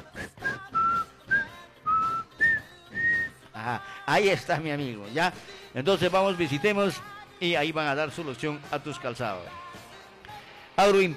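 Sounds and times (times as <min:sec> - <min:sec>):
person whistling a short lilting tune: 0:00.0 - 0:03.5
speech: 0:04.1 - 0:09.6, 0:10.8 - 0:11.1.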